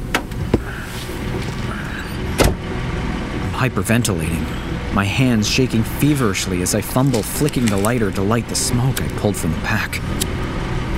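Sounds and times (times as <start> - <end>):
truck engine idling: 0.0 - 10.9
truck cab door clunks: 2.4 - 2.6
speech: 3.6 - 10.4.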